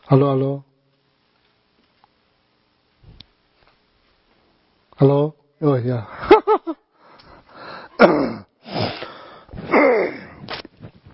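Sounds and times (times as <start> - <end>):
speech: 0.1 - 0.7, 5.0 - 6.8, 8.0 - 8.4
person clearing their throat: 8.0 - 10.4.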